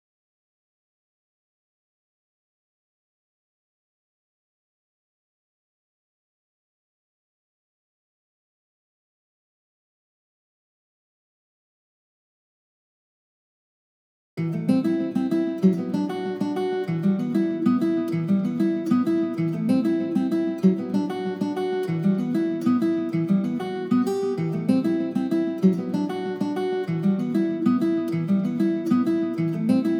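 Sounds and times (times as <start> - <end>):
guitar in E minor at 96 BPM: 14.4 - 29.9.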